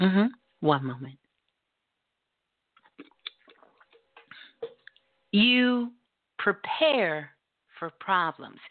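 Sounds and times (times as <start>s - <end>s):
speech: 0.0s - 1.2s, 5.3s - 8.6s
person swallowing: 2.8s - 4.9s
person sipping a drink: 2.8s - 5.0s.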